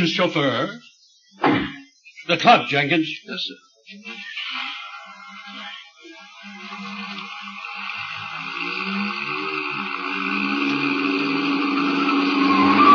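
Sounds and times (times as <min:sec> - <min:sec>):
speech: 0:00.0 - 0:04.7, 0:05.3 - 0:11.0
car engine revving hard as it speeds up: 0:08.1 - 0:12.9
tires squealing as a car swings around a corner: 0:08.2 - 0:12.9.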